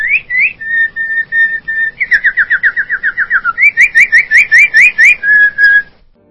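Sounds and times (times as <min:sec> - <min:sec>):
small bird singing: 0:00.0 - 0:05.9.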